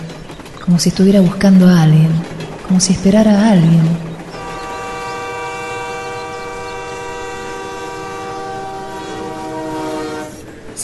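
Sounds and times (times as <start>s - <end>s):
train rail rumble at a station: 0.0s - 10.8s
speech: 0.7s - 4.1s
train horn or whistle: 4.3s - 10.5s.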